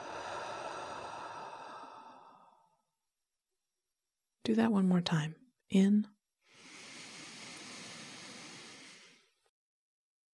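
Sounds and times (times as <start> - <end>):
deep slow breath out through the mouth: 0.0 - 2.7, 6.5 - 9.4
speech: 4.5 - 6.2.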